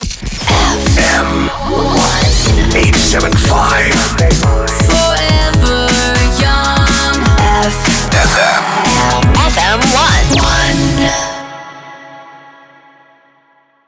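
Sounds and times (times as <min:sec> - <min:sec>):
jingle music in C minor: 0:00.5 - 0:11.6.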